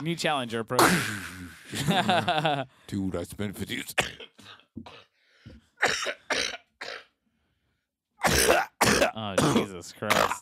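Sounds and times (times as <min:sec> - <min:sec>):
speech: 0:00.0 - 0:05.1, 0:05.8 - 0:06.5, 0:08.4 - 0:10.4
harsh hacking coughing: 0:00.8 - 0:01.4, 0:03.9 - 0:05.1, 0:05.8 - 0:07.1, 0:08.2 - 0:10.4
laughter: 0:01.6 - 0:02.7.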